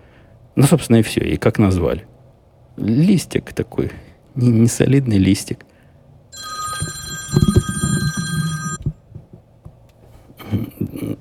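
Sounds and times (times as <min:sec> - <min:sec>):
speech: 0:00.6 - 0:02.1, 0:02.8 - 0:05.7
telephone ringing with an incoming call: 0:06.4 - 0:09.0.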